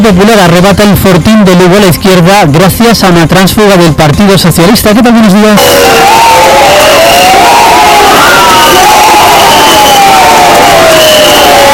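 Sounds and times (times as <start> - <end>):
speech: 0.1 - 6.6
loud dense crowd in Lugo Galicia booing as a new mayor takes office: 5.6 - 11.7.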